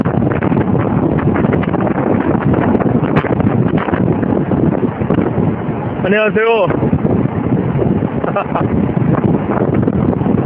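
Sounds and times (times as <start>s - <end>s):
wind blowing on a highway buffeting the microphone: 0.0s - 10.4s
speech: 6.1s - 6.8s, 8.4s - 9.0s.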